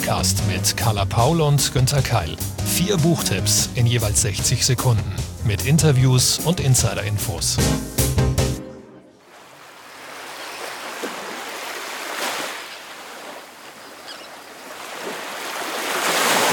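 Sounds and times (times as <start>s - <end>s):
speech: 0.1s - 7.9s
ocean waves breaking on a beach: 9.2s - 16.5s.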